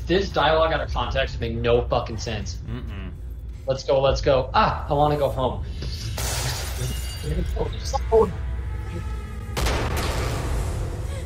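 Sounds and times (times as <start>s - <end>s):
busy video game noise: 0.0s - 11.2s
speech: 0.1s - 9.1s
gunfire from a video game: 9.5s - 11.0s.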